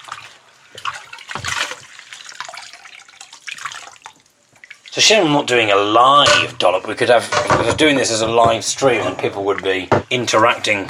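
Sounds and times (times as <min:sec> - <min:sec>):
water sloshing and splashing as something is washed in running water: 0:00.0 - 0:10.8
speech: 0:05.0 - 0:10.8.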